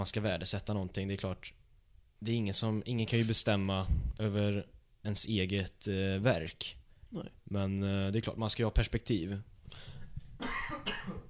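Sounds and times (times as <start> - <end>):
speech: 0.0 - 1.6, 2.2 - 10.0
person coughing harshly: 10.4 - 11.2.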